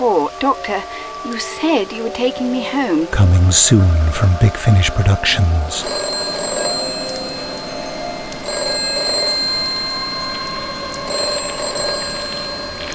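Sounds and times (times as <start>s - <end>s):
speech: 0.2s - 6.1s
old-fashioned telephone bell ringing: 5.6s - 12.9s.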